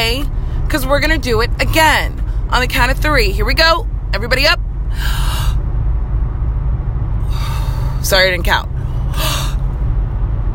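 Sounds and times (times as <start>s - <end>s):
low hum: 0.0s - 10.5s
speech: 0.7s - 4.6s, 8.1s - 9.3s
deep breaths in and out during a guided deep-breathing exercise: 4.9s - 5.6s, 7.2s - 8.1s, 8.8s - 9.7s.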